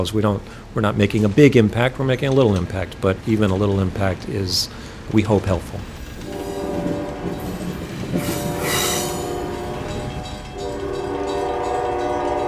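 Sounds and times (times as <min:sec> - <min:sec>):
speech: 0:00.0 - 0:05.9, 0:08.1 - 0:08.4
train pulling out of a station rumbling: 0:00.0 - 0:12.4
sustained horn-like train tones: 0:06.2 - 0:12.4
hissing burst: 0:06.3 - 0:09.8.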